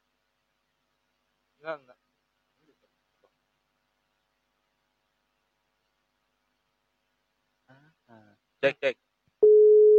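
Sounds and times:
speech: 0:01.6 - 0:02.1, 0:08.1 - 0:09.0
electronic ringing tone from a phone call on loudspeaker: 0:09.4 - 0:09.9.

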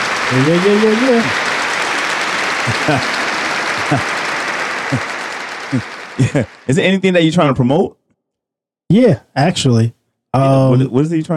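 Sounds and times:
applause: 0:00.0 - 0:07.6
laughter: 0:00.0 - 0:07.8
people shouting: 0:00.0 - 0:07.8
speech: 0:00.3 - 0:01.4, 0:02.6 - 0:03.2, 0:03.9 - 0:04.1, 0:04.9 - 0:05.1, 0:05.7 - 0:08.0, 0:08.9 - 0:11.3.

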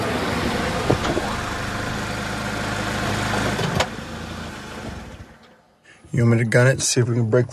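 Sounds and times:
car pulling over and stopping: 0:00.0 - 0:05.8
speech: 0:06.2 - 0:07.5.

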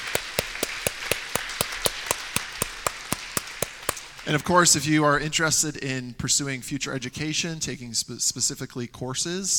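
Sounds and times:
audience clapping to thank a guest speaker: 0:00.0 - 0:04.8
speech: 0:04.2 - 0:09.5.

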